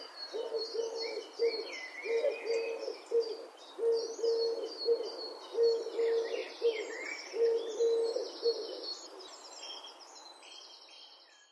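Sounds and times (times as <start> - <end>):
Eurasian collared dove cooing: 0.0 - 9.2
other birds high chirps: 0.0 - 11.5.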